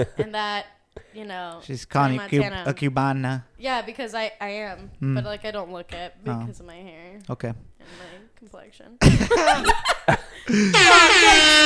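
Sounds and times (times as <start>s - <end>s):
speech: 0.0s - 11.6s
air horn blast: 10.7s - 11.6s.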